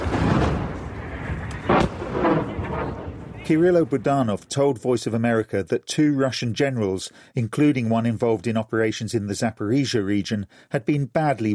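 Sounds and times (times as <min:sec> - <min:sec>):
missile strike explosion blast: 0:00.0 - 0:04.2
speech: 0:03.5 - 0:11.5.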